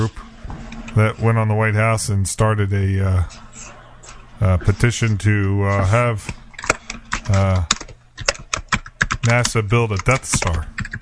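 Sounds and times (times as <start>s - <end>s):
speech: 1.0s - 3.8s, 4.4s - 6.4s, 7.3s - 7.8s, 9.2s - 11.0s
loud typing on a keyboard: 7.1s - 11.0s.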